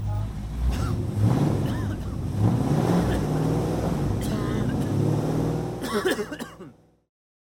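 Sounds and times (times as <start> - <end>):
combustion-engine car passing by: 0.0 - 5.8.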